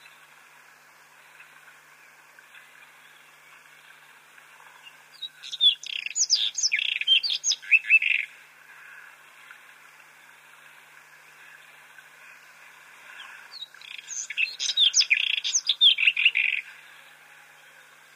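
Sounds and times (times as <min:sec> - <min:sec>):
white-throated robin singing scratchy warbling phrases: 0:04.8 - 0:08.4, 0:13.5 - 0:16.9.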